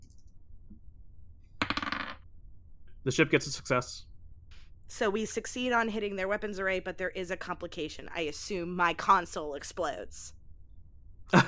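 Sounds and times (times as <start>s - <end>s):
dice clattering across a hard tabletop: 1.6s - 2.2s
speech: 3.0s - 4.1s, 4.9s - 10.4s, 11.3s - 11.4s.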